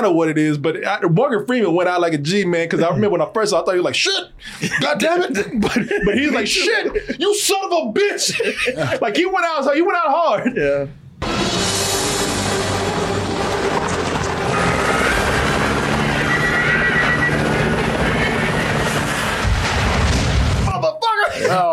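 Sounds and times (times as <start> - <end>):
speech: 0.0 - 11.0
laughter: 4.4 - 9.3, 10.3 - 10.9, 21.2 - 21.7
loud helicopter roaring: 11.2 - 20.6
dense booming rumble: 11.2 - 20.7.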